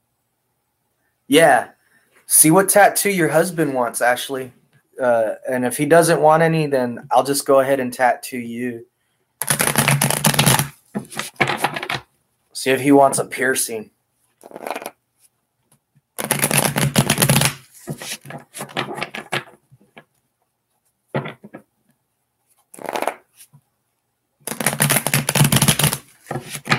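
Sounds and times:
speech: 1.3s - 1.7s, 2.3s - 9.6s, 12.6s - 14.8s
tarot cards riffle shuffling: 9.4s - 12.0s, 14.4s - 15.0s, 16.2s - 19.6s, 22.7s - 23.5s, 24.5s - 26.7s.

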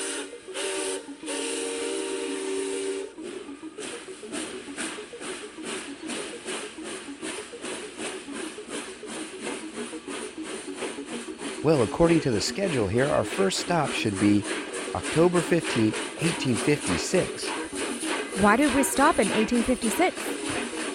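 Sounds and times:
steam train whistle: 0.0s - 4.0s, 11.4s - 20.9s
hissing steam: 0.0s - 20.9s
speech: 11.6s - 17.6s, 18.4s - 20.5s.

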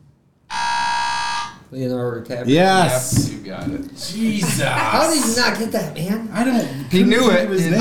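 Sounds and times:
loud sustained electronic quiz buzzer blaring: 0.5s - 1.6s
speech: 1.7s - 7.7s
laughter: 2.5s - 7.7s.

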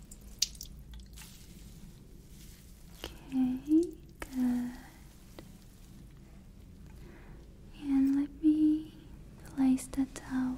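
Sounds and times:
water drip or splash: 0.0s - 5.5s
wet hair being squeezed to remove water: 0.0s - 6.1s
low rumble: 0.0s - 10.5s.

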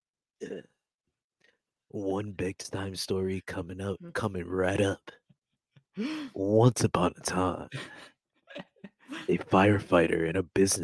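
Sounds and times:
man clearing his throat with a rough guttural rasp: 0.4s - 0.7s
speech: 0.4s - 0.8s, 1.9s - 5.2s, 6.0s - 10.8s
laughter: 7.7s - 10.3s.

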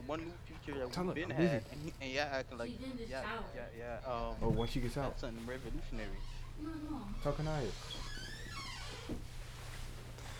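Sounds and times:
speech: 0.1s - 8.1s
creaky door swinging: 7.2s - 9.1s.

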